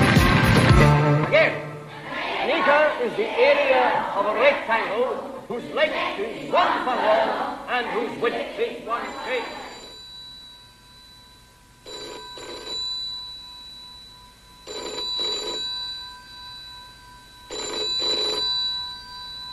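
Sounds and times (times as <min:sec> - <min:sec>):
faint steady hum: 0:00.6 - 0:19.5
speech: 0:03.0 - 0:09.6
telephone ringing with a classic double trill: 0:09.0 - 0:19.5.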